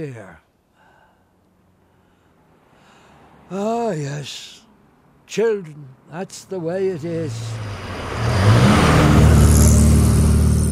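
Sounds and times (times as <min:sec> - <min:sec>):
speech: 0:00.0 - 0:00.5, 0:03.5 - 0:04.6, 0:05.3 - 0:07.7
cars speeding past at a road crossing: 0:02.5 - 0:03.6, 0:06.9 - 0:10.6.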